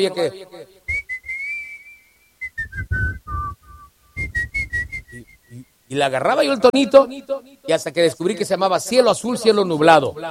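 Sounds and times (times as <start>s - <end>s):
speech: 0.0s - 0.8s, 5.2s - 10.2s
person whistling a melody: 0.9s - 5.6s.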